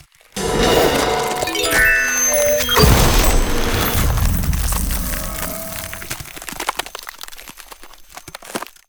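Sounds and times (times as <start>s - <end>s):
healing wave effect: 0.4s - 6.2s
ice spell effect: 0.4s - 7.8s.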